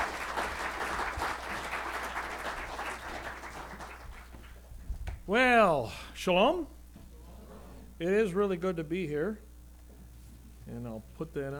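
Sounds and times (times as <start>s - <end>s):
audience applause: 0.0s - 4.7s
speech: 5.3s - 6.8s, 8.0s - 9.4s, 10.7s - 11.5s.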